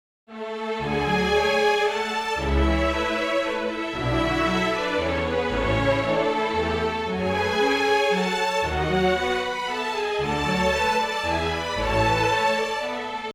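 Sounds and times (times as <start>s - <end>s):
string ensemble: 0.3s - 13.3s.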